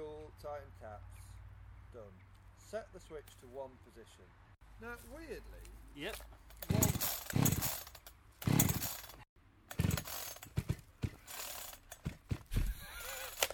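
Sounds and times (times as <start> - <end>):
speech: 0.4 - 1.2, 1.9 - 6.8
small carburettor engine pull-started with recoil cord: 6.5 - 13.5.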